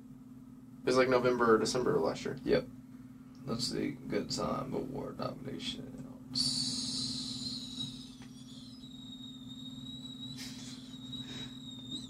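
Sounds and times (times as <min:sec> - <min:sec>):
low electrical hum: 0:00.0 - 0:12.0
speech: 0:00.9 - 0:02.8, 0:03.4 - 0:06.6
piercing high-pitched whistling tone: 0:06.4 - 0:12.0.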